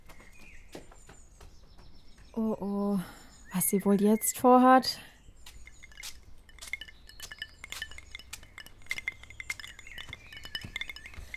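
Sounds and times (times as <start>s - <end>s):
speech: 2.4s - 5.1s
ice cubes clinking in a glass of iced tea: 5.8s - 11.3s.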